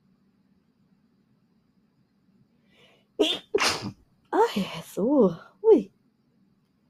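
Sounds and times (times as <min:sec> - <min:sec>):
faint intake of breath: 0:02.6 - 0:03.1
person sneezing: 0:03.2 - 0:03.9
speech: 0:04.5 - 0:05.9.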